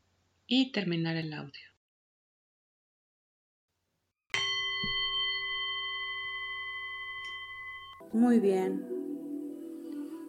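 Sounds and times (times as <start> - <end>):
speech: 0.5 - 1.7, 8.1 - 9.0
meditation gong being struck: 4.4 - 8.2.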